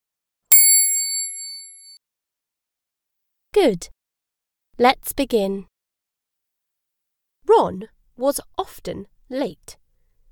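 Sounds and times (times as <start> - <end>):
bright page-turn bell chime: 0.5 - 1.9
speech: 3.6 - 4.0, 4.8 - 5.7, 7.5 - 9.8.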